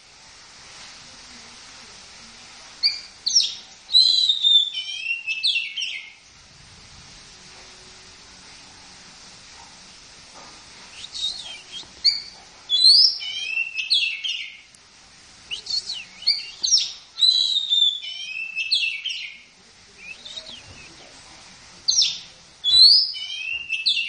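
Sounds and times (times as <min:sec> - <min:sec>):
steady hiss: 0:00.0 - 0:24.0
Oriental magpie-robin song of clear whistles and chattery notes: 0:02.8 - 0:06.2, 0:10.9 - 0:14.6, 0:15.5 - 0:19.4, 0:20.0 - 0:21.0, 0:21.9 - 0:24.0.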